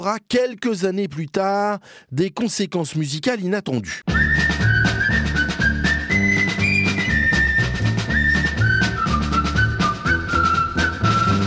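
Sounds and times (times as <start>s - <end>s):
speech: 0.0s - 4.3s
full band playing a march: 4.1s - 11.4s
steady drum beats: 4.1s - 11.4s
whistled military march melody: 4.1s - 11.4s.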